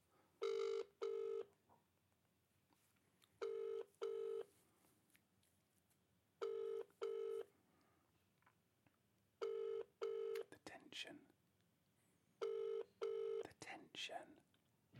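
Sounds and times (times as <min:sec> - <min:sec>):
telephone ringback tone from an outgoing call: 0:00.4 - 0:01.5, 0:03.4 - 0:04.5, 0:06.4 - 0:07.5, 0:09.4 - 0:10.4, 0:12.4 - 0:13.4.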